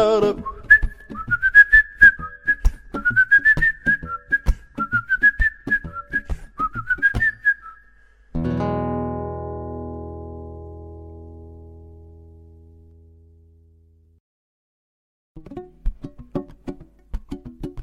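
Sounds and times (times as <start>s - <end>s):
person whistling a simple bouncy tune: 0.2s - 8.0s
soft percussive taps: 15.9s - 17.8s.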